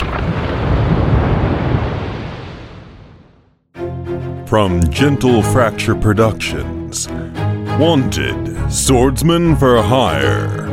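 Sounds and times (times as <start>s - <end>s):
thunder crack: 0.0s - 3.5s
speech: 4.5s - 10.6s.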